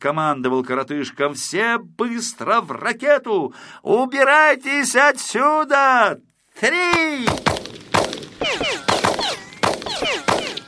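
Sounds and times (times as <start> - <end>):
speech: 0.0 - 7.7
police rifles firing gunshots: 7.2 - 10.6
whistling bullets: 7.2 - 10.6.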